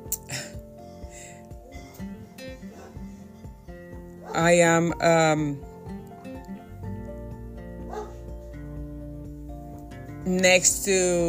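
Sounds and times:
several dogs barking and whining: 0:01.6 - 0:04.4, 0:07.8 - 0:08.4
speech: 0:04.4 - 0:05.7, 0:10.3 - 0:11.2.

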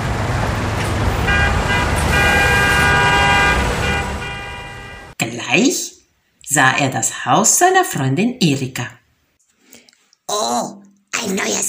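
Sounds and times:
busy city traffic rumbling: 0:00.0 - 0:05.2
car horns honking: 0:00.6 - 0:05.2
speech: 0:05.5 - 0:05.8, 0:06.5 - 0:09.0, 0:10.3 - 0:11.6.

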